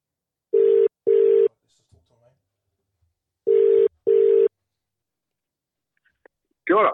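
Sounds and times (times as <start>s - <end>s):
telephone ringback tone while dialling a guest into a call: 0.5s - 1.5s, 3.5s - 4.5s.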